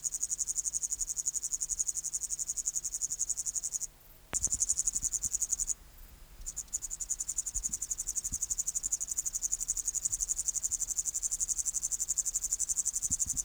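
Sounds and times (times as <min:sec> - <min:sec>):
Upland green bush-cricket Tettigonia cantans song: 0:00.0 - 0:13.4.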